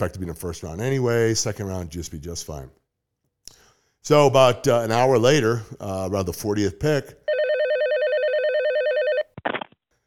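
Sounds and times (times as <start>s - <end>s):
speech: 0.0s - 2.8s, 4.0s - 7.2s
telephone ringing with electronic warble: 7.3s - 9.4s.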